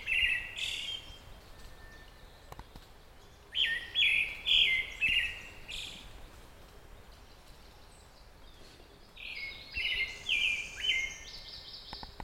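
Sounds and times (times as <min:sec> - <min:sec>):
Pale thrush Turdus pallidus singing whistled notes: 0:00.0 - 0:02.6, 0:03.3 - 0:06.2, 0:09.1 - 0:12.1.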